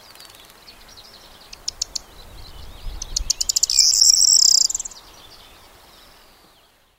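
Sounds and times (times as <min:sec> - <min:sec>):
corn bunting song of dry ticks and rattling notes: 0:00.0 - 0:06.8.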